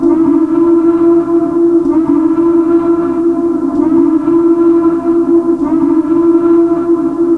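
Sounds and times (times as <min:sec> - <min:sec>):
alarm: 0:00.0 - 0:07.3
ambience: 0:00.0 - 0:07.3.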